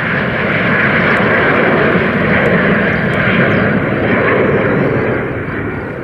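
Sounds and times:
Airbus A350 jet airliner engines roaring: 0.0s - 6.0s.

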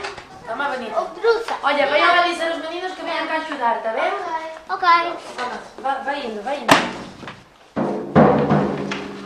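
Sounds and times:
speech: 0.8s - 7.0s
drum being struck: 7.8s - 9.2s.

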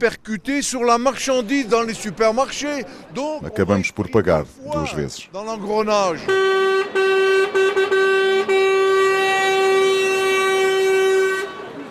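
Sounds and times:
speech: 0.0s - 6.5s
loud deep truck air horn blaring in traffic: 6.2s - 11.8s.

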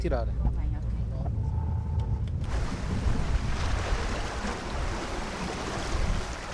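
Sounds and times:
speech: 0.0s - 0.7s
heavy rumbling wind buffeting: 0.4s - 6.5s
sea waves surging around a fort boat landing: 2.4s - 6.5s.

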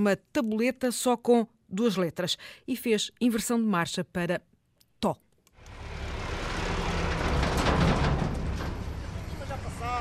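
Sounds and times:
speech: 0.0s - 5.2s
tractor loaded with grapes passing on the Planalto Mirandês: 5.6s - 9.9s.

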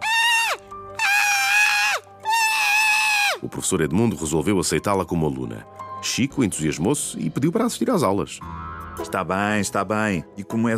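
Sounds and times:
voice imitating the squeals of a young circus tiger: 0.0s - 3.4s
speech: 3.5s - 10.7s.

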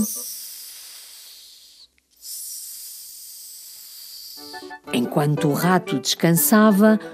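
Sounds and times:
speech: 0.0s - 0.4s, 4.4s - 7.1s
soft airy sleeping breaths: 0.0s - 4.8s.

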